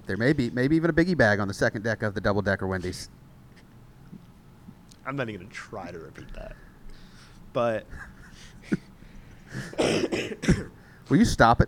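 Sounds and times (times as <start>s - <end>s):
speech: 0.1s - 3.2s, 5.0s - 6.6s, 7.6s - 8.9s, 9.5s - 11.6s
person coughing: 9.5s - 10.8s.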